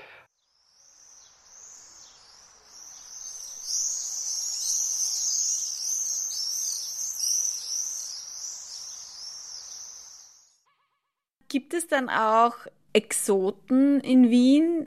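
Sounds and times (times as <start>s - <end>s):
flock of common swifts screaming overhead: 0.8s - 10.6s
speech: 11.5s - 14.8s.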